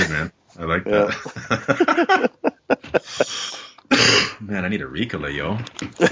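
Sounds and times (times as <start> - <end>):
speech: 0.0 - 6.1
laughter: 0.9 - 3.7, 5.8 - 6.1
person coughing: 3.9 - 4.4.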